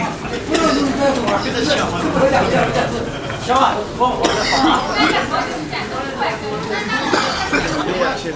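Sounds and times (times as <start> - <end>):
laughter: 0.2 - 6.1, 6.7 - 8.2
coughing in China: 0.4 - 1.1, 4.2 - 5.5, 6.9 - 8.0.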